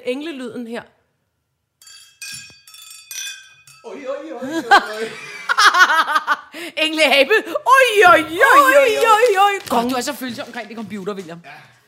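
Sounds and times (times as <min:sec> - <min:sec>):
speech: 0:00.0 - 0:01.0, 0:03.8 - 0:11.8
glasses clinking in a toast: 0:01.8 - 0:04.2
laughter: 0:04.2 - 0:06.6.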